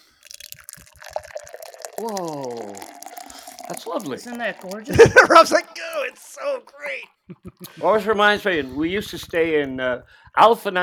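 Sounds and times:
liquid poured into a container: 0.0 - 7.2
speech: 2.0 - 2.9, 3.7 - 10.8
laughter: 4.7 - 9.2.

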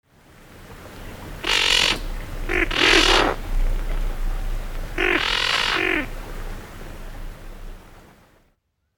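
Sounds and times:
steady low rumble: 0.2 - 8.4
band-tailed pigeon harsh raspy guttural call: 1.4 - 8.0.

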